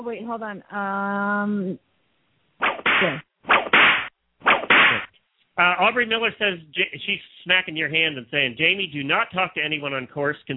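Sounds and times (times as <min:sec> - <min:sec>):
speech: 0:00.0 - 0:01.9, 0:02.6 - 0:03.3, 0:05.6 - 0:10.5
short tonal swoop: 0:02.6 - 0:05.1
whip-crack effects with a hissing tail: 0:02.6 - 0:05.1.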